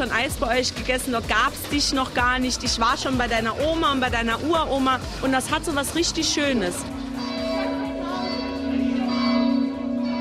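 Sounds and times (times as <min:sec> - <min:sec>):
speech: 0:00.0 - 0:07.0
recorded church bells played from tape: 0:07.0 - 0:10.1.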